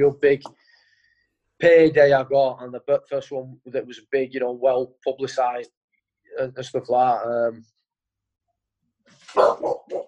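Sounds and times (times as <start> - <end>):
speech: 0.0 - 0.6, 1.6 - 7.8
dog barking: 9.3 - 10.0.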